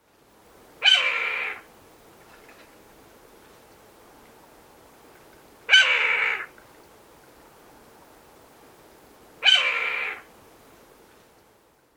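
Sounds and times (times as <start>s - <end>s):
Steller's Jay mimicking red-tailed hawk call: 0.8s - 1.7s, 5.7s - 6.5s, 9.4s - 10.3s.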